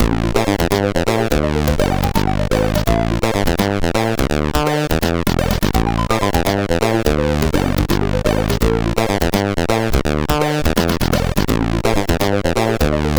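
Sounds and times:
SID chip music CSG8580R5: 0.0 - 13.1.

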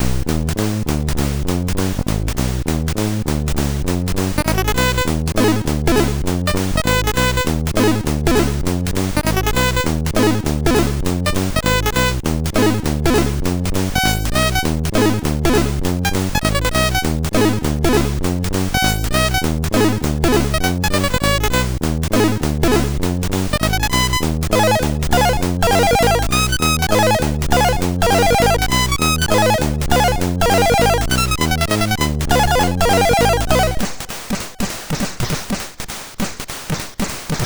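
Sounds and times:
swing music on MOS6581R2: 0.0 - 34.8.

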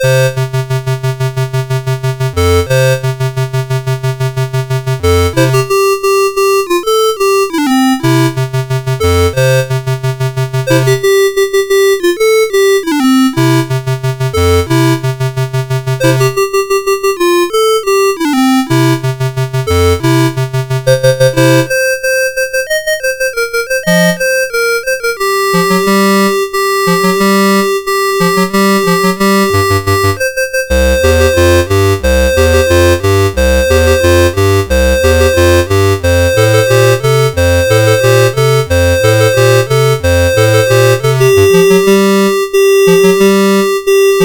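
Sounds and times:
song played on an 8580R5 SID sound chip: 0.0 - 44.2.

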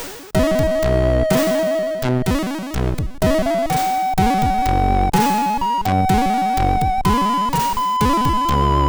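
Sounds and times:
classical chip music on a MOS6581R3 SID chip: 0.3 - 8.8.

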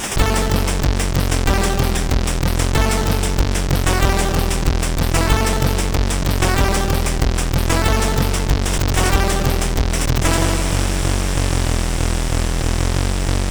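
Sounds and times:
dirty bass from SID CSG8580R5 chip: 0.1 - 13.4.

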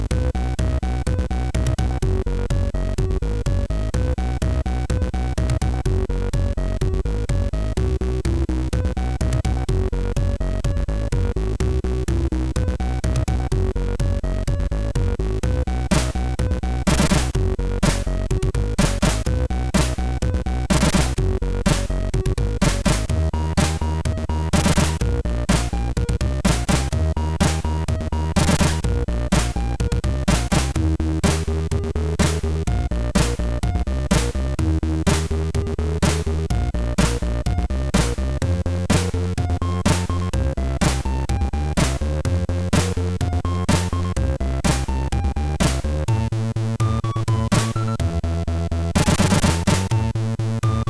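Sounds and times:
MOS6581 chiptune melody: 0.1 - 50.8.

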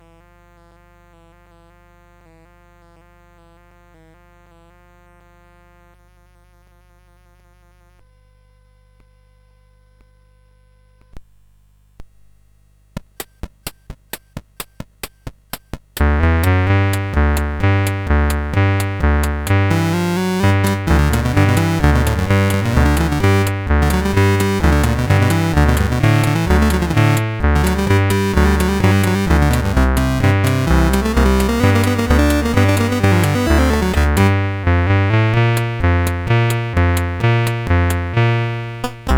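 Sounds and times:
saxophone music: 16.9 - 38.2, 38.8 - 39.1.

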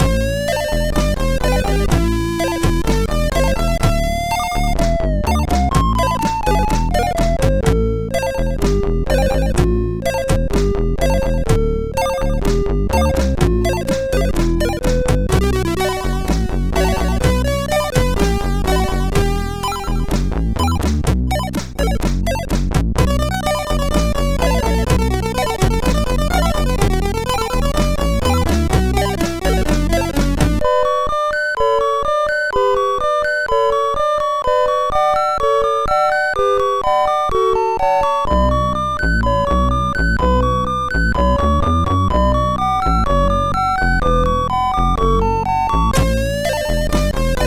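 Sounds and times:
MOS6581 chiptune music: 0.0 - 47.4.

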